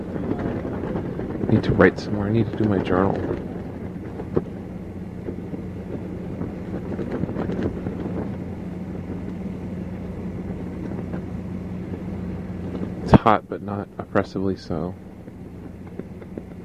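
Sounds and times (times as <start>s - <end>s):
wind blowing outdoors on a hot day buffeting the microphone: 0.0s - 16.6s
speech: 1.5s - 3.4s, 13.3s - 15.0s.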